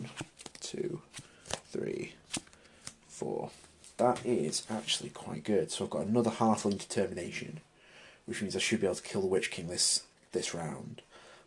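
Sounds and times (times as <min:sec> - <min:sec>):
playing cards drawn from a deck during a tabletop card game: 0:00.0 - 0:04.3
speech: 0:00.8 - 0:01.1, 0:01.7 - 0:02.2, 0:03.2 - 0:07.7, 0:08.3 - 0:11.4.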